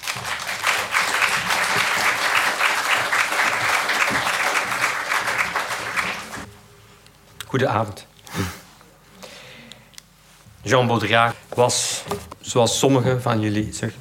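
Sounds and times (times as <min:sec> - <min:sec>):
audience applause at an evening talk: 0:00.0 - 0:06.5
speech: 0:07.5 - 0:08.6, 0:10.7 - 0:14.0.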